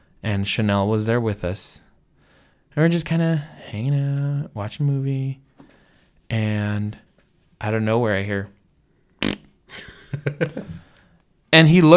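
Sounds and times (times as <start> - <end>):
speech: 0.2 - 1.8, 2.8 - 5.4, 6.3 - 7.0, 7.6 - 8.6, 9.7 - 10.8, 11.5 - 11.9
fart: 9.2 - 9.5.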